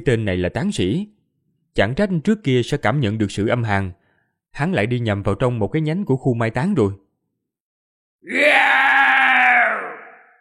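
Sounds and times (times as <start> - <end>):
speech: 0.0 - 1.2, 1.8 - 7.0, 8.2 - 8.9
monster roaring as an audiobook sound effect: 8.3 - 10.3.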